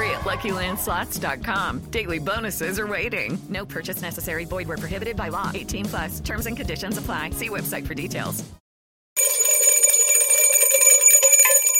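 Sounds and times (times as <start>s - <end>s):
speech: 0.2s - 8.6s
bright metallic alarm-clock-style bell ringing rapidly: 9.2s - 11.7s.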